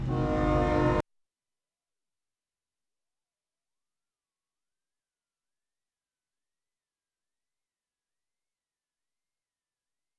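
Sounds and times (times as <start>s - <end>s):
rumbling rail noise: 0.0s - 1.0s
train horn: 0.0s - 1.0s.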